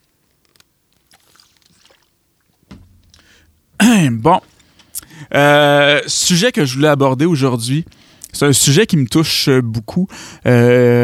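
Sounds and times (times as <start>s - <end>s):
person sipping a drink: 0.0s - 3.5s
quiet slurping and mouth sounds: 0.0s - 3.7s, 4.3s - 5.2s, 7.9s - 8.4s
gulp or clunk: 0.4s - 3.4s
speech: 4.0s - 4.5s, 5.3s - 11.0s.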